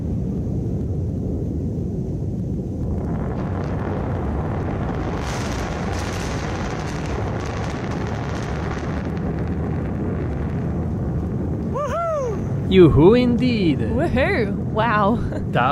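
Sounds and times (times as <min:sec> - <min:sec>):
deep rolling roar and rumble: 0:00.0 - 0:15.6
double sonic boom: 0:00.0 - 0:15.6
speech: 0:12.8 - 0:15.6.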